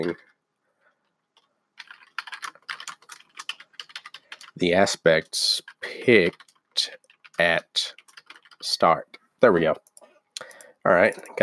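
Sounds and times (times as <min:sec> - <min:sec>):
speech: 0:00.0 - 0:00.3, 0:04.6 - 0:08.0, 0:08.6 - 0:11.4
typing notes on a computer keyboard: 0:01.4 - 0:04.6, 0:05.7 - 0:08.7.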